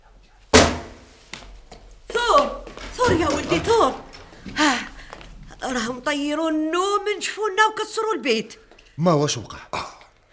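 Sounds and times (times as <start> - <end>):
banging on a door: 0.5 - 1.0
speech: 2.3 - 4.9, 5.6 - 9.8.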